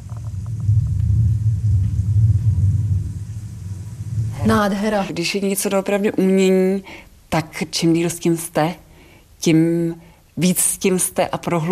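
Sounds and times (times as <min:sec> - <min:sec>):
deep continuous thunderstorm rumble played in an exhibition: 0:00.0 - 0:06.0
speech: 0:04.5 - 0:08.8, 0:09.4 - 0:11.7.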